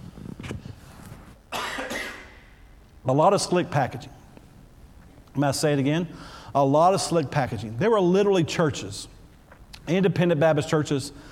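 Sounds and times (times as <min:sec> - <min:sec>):
person coughing: 0:01.5 - 0:02.5
speech: 0:03.1 - 0:04.2, 0:05.4 - 0:09.2, 0:09.8 - 0:11.3.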